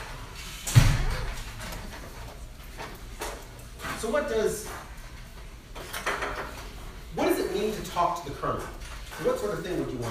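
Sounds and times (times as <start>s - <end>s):
door swinging shut with a solid thud in a large space: 0.6s - 1.7s
speech: 4.0s - 4.8s, 7.6s - 10.0s.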